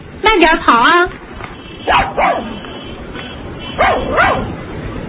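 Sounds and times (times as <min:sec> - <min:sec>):
speech: 0:00.3 - 0:01.2
small dog yapping with high-pitched barks: 0:01.8 - 0:02.6, 0:03.8 - 0:04.5.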